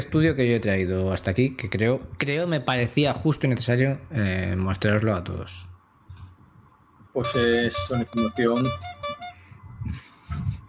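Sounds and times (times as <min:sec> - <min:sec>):
speech: 0:00.1 - 0:05.7, 0:07.2 - 0:09.1
horn honking: 0:07.2 - 0:09.4.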